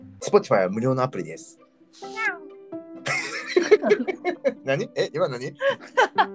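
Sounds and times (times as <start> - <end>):
speech: 0.2 - 2.1, 3.6 - 6.3
person imitating a cat meow: 2.0 - 2.5
laughter: 3.1 - 6.3.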